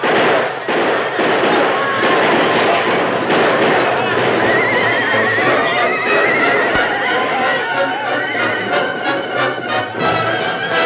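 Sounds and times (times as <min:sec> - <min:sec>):
crackling bursts of gunfire: 0:00.0 - 0:07.4
galloping hooves of a posse riding down on attackers: 0:00.7 - 0:10.8
horses neighing and whinnying: 0:03.7 - 0:10.8.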